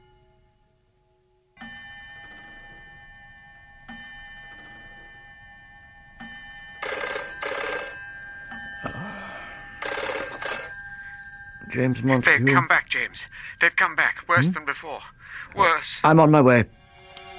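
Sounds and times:
telephone bell ringing: 1.6s - 14.2s
speech: 11.8s - 16.8s.

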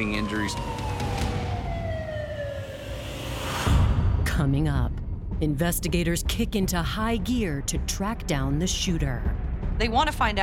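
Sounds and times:
speech: 0.0s - 1.1s, 4.4s - 10.4s
ambulance siren wailing: 0.0s - 3.6s.

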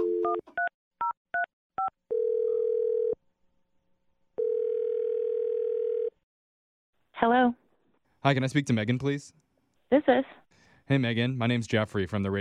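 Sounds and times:
telephone ringing tones: 1.4s - 3.2s, 4.4s - 6.2s
speech: 7.2s - 7.6s, 8.2s - 12.3s.

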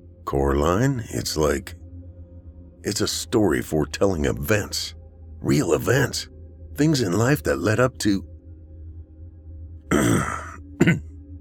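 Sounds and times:
speech: 0.3s - 1.8s, 2.8s - 8.3s, 9.9s - 11.1s
man clearing his throat: 9.9s - 11.1s.

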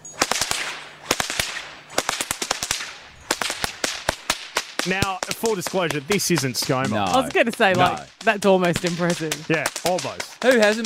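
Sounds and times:
whip cracking: 0.0s - 10.8s
speech: 4.8s - 10.8s.

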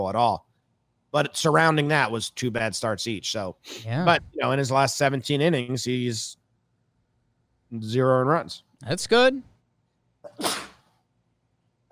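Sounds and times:
speech: 0.0s - 0.5s, 1.1s - 6.4s, 7.7s - 9.5s
sneeze: 10.3s - 10.9s.

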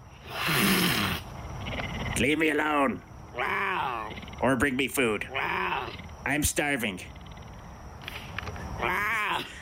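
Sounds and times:
faint noise: 0.0s - 9.5s
cougar growling harshly: 0.2s - 2.4s, 3.3s - 6.3s
speech: 2.2s - 7.2s, 8.8s - 9.5s.

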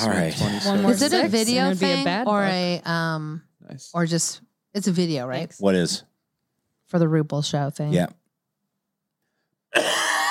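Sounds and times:
speech: 0.0s - 6.1s, 6.9s - 8.2s, 9.7s - 10.1s
harsh cough: 9.7s - 10.2s.

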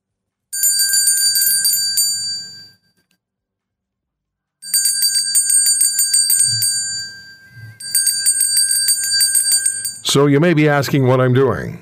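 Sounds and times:
bells ringing: 0.6s - 2.7s, 4.6s - 10.2s
speech: 10.1s - 11.7s.

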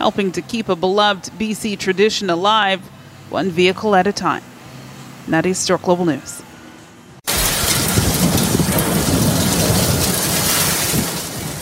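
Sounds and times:
speech: 0.0s - 4.5s, 5.3s - 6.4s
severe storm's heavy rain: 7.3s - 11.6s
severe storm's strong wind roaring: 7.3s - 11.6s.

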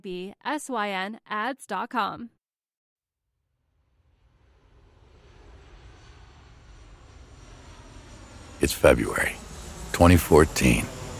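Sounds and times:
speech: 0.0s - 2.4s, 8.6s - 11.0s
airplane engine roaring while touching down on a runway: 4.2s - 11.1s.

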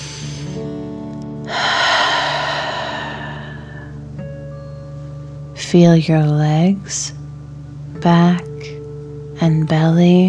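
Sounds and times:
louder breathy exhale in a breathing exercise: 0.0s - 0.7s, 1.5s - 4.0s
slow deep inhale through the nose in a breathing exercise: 0.0s - 0.7s, 1.5s - 4.0s
speech: 5.7s - 7.2s, 8.0s - 8.5s, 9.4s - 10.2s.

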